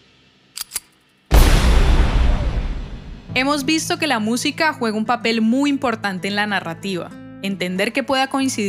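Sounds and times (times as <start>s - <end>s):
metallic clicks: 0.6s - 1.0s
gunshot: 1.3s - 3.4s
cymbal crash: 1.3s - 3.8s
speech: 3.4s - 8.6s.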